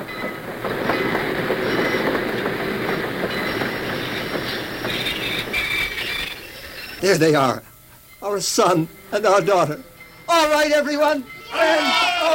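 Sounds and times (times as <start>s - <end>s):
train wheels clattering on rails: 0.0s - 12.0s
train pulling into a station: 0.0s - 12.3s
hissing and metallic tones: 0.1s - 10.3s
speech: 7.0s - 12.3s.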